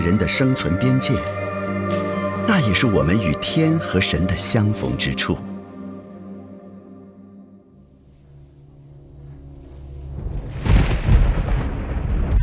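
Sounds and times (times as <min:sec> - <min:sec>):
speech: 0:00.0 - 0:02.0, 0:02.6 - 0:05.5
summer thunder rumbling and crashing: 0:10.2 - 0:12.4.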